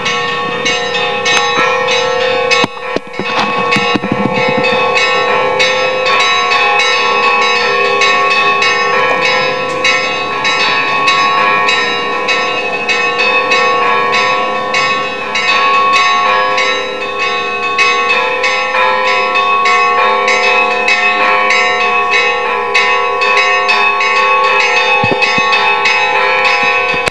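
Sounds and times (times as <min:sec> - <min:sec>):
bells playing in concert: 0:00.0 - 0:27.0.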